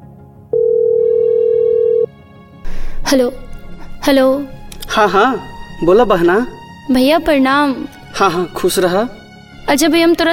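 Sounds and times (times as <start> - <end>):
unanswered phone call ringing: 0.6 - 2.1
speech: 3.1 - 3.4, 4.0 - 10.3.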